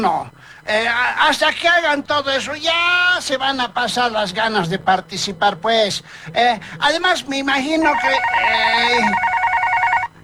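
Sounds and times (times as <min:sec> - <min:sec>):
speech: 0:00.0 - 0:09.3
telephone ringing with a warbling electronic two-tone trill: 0:07.8 - 0:10.2.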